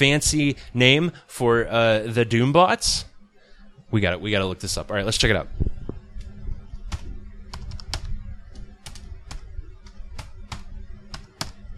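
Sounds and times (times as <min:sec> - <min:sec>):
speech: 0:00.0 - 0:03.1, 0:03.9 - 0:05.8
low steady rumble: 0:00.0 - 0:11.7
typing on a computer keyboard with the shift key held down: 0:06.9 - 0:11.7.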